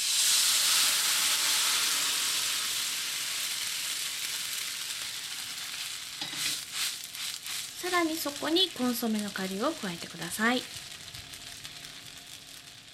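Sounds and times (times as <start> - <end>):
dried-scallop soaking liquid sizzling in a hot oiled pan of barley and onion: 0.0 - 12.9
stirring sounds: 6.2 - 11.8
speech: 7.8 - 10.8.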